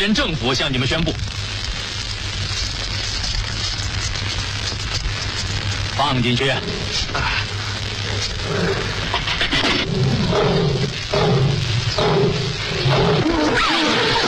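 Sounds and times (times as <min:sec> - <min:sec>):
speech: 0:00.0 - 0:01.7, 0:06.0 - 0:07.5, 0:08.2 - 0:14.2
continuous noise: 0:00.0 - 0:14.2
lion roaring: 0:08.1 - 0:14.2.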